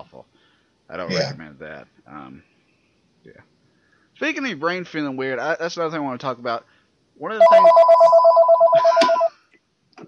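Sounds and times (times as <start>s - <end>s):
speech: 0.9s - 2.5s, 3.2s - 3.6s, 4.2s - 8.0s
home telephone ringing with a warbling electronic trill: 7.4s - 9.3s.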